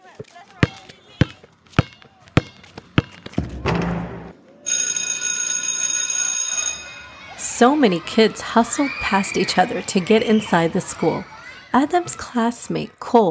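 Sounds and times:
basketball dribbled on a school basketball court: 0.0s - 3.8s, 11.9s - 12.3s
speech: 0.2s - 0.5s, 7.6s - 13.2s
electric school morning bell ringing: 4.7s - 6.9s.

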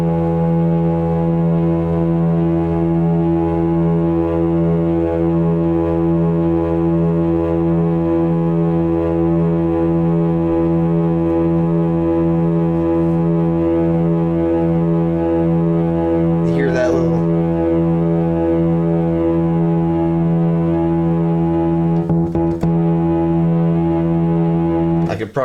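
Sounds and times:
low analog synthesizer drone shifting from triangle to square wave: 0.0s - 25.2s.

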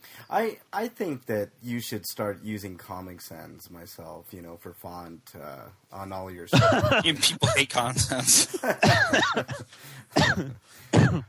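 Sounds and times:
speech: 0.3s - 11.2s
laughter: 6.5s - 9.7s
person coughing: 6.7s - 7.7s, 8.7s - 11.2s.

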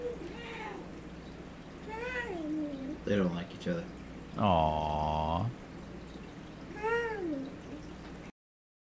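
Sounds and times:
cat being stroked meowing: 0.0s - 0.9s
steady low hum: 0.0s - 8.3s
speech: 3.1s - 5.6s.

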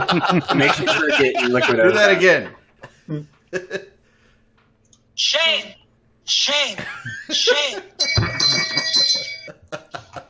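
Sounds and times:
laughter: 0.0s - 4.0s, 6.8s - 10.2s
speech: 0.1s - 3.9s, 5.2s - 8.5s
bright bell ringing: 8.0s - 9.6s.

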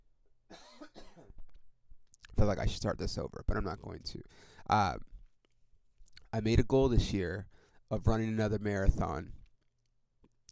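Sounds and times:
harsh coughs: 0.5s - 1.4s
speech: 2.4s - 5.1s, 6.3s - 9.4s.

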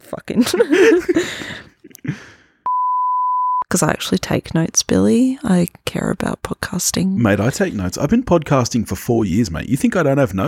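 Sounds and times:
speech: 0.1s - 2.2s, 3.7s - 10.4s
steady censor beep: 2.7s - 3.7s.

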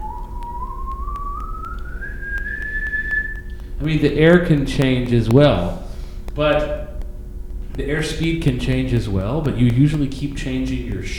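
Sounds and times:
person whistling an ascending scale: 0.0s - 3.7s
faint ticking: 0.0s - 11.1s
speech: 3.8s - 5.8s, 6.4s - 6.8s, 7.8s - 11.1s.

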